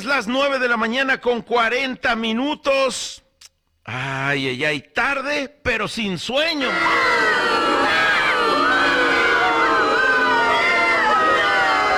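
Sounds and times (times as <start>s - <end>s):
speech: 0.0s - 3.2s, 3.9s - 7.4s
large crowd booing: 6.6s - 11.9s.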